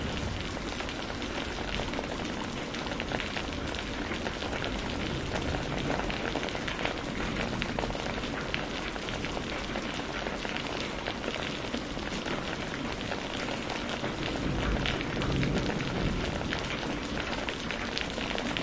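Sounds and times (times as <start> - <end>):
spring rainstorm pouring down on surfaces: 0.0 - 18.6.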